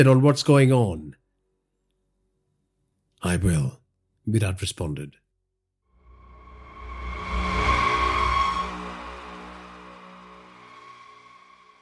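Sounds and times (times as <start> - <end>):
speech: 0.0 - 1.2, 3.2 - 5.2
car engine accelerating: 6.1 - 11.8.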